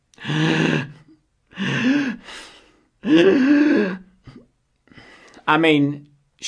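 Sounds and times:
voice imitating a woman gasping for air and weeping: 0:00.2 - 0:05.3
speech: 0:05.5 - 0:06.4.

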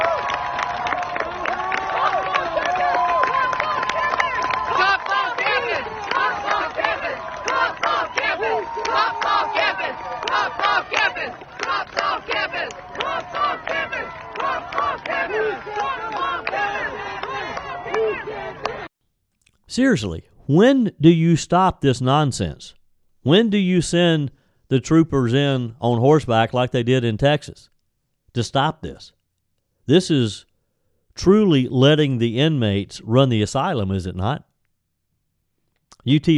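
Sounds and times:
large protest crowd chanting a slogan in unison: 0:00.0 - 0:18.9
speech: 0:19.8 - 0:27.7, 0:28.4 - 0:29.2, 0:29.9 - 0:30.5, 0:31.2 - 0:34.5, 0:36.0 - 0:36.3.

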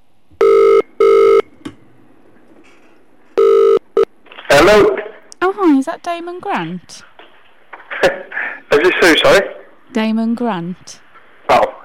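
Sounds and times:
telephone ringing tone through a phone line: 0:00.4 - 0:01.5, 0:03.4 - 0:04.1
speech: 0:04.6 - 0:05.0, 0:05.8 - 0:07.1, 0:08.8 - 0:11.8.

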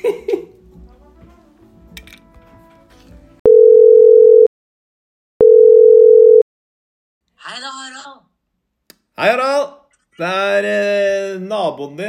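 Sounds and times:
phone call ringback tone: 0:03.4 - 0:04.5, 0:05.4 - 0:06.4
speech: 0:10.2 - 0:10.9, 0:11.7 - 0:12.0.

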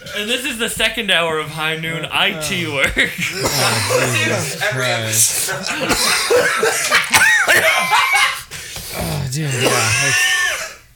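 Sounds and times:
speech: 0:00.0 - 0:08.4, 0:09.3 - 0:10.4
laughter: 0:00.0 - 0:10.8
loud coughing fit: 0:02.8 - 0:10.8
strained wheezy vocal sounds like laughing through the cough: 0:03.1 - 0:07.0, 0:08.4 - 0:10.8.

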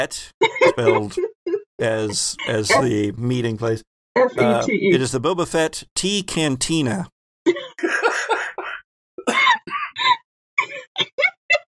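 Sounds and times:
speech: 0:00.0 - 0:08.4
laughter: 0:00.4 - 0:03.1, 0:04.4 - 0:04.9, 0:07.5 - 0:11.7
person coughing loudly: 0:00.7 - 0:01.2, 0:04.4 - 0:04.7, 0:07.5 - 0:10.2.

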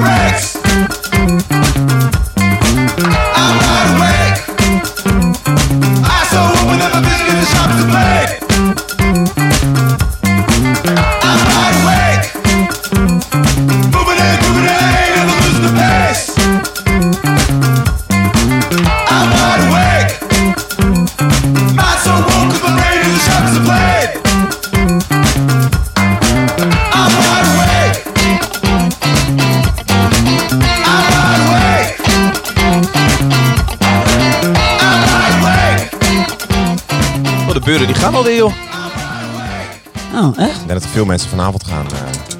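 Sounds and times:
sung vocal line in indie rock song: 0:00.0 - 0:00.8, 0:03.0 - 0:04.8, 0:06.0 - 0:08.7, 0:10.8 - 0:12.6, 0:13.9 - 0:16.6, 0:18.8 - 0:20.6, 0:21.7 - 0:24.4, 0:26.6 - 0:28.3, 0:30.6 - 0:32.5, 0:34.2 - 0:36.2
steady driving drum beat: 0:00.0 - 0:41.0
distorted guitars: 0:00.0 - 0:42.3
speech: 0:41.0 - 0:41.6.

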